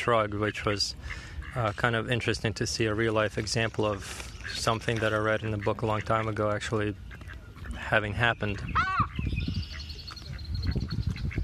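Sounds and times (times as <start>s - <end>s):
speech: 0.0s - 7.1s, 7.8s - 9.1s
group of ducks quacking outdoors: 0.0s - 11.4s
thin high bird chirps outdoors: 8.3s - 11.4s.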